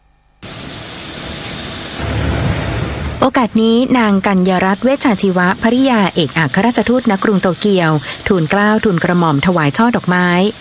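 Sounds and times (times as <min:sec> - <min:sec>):
aircraft engine idling after landing: 0:00.4 - 0:10.5
low rumble: 0:01.2 - 0:05.8
speech: 0:03.2 - 0:10.5.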